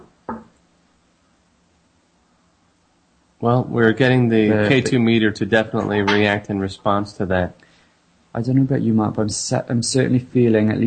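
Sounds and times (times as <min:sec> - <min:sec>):
short solid knock: 0:00.0 - 0:00.5
faint low hum: 0:00.0 - 0:10.8
speech: 0:03.4 - 0:07.6, 0:08.4 - 0:10.8.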